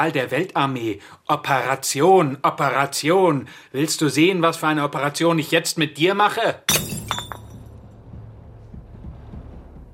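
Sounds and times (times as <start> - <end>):
speech: 0.0 - 7.4
faint low background: 0.0 - 9.9
glass beer bottle smashing: 6.7 - 7.8.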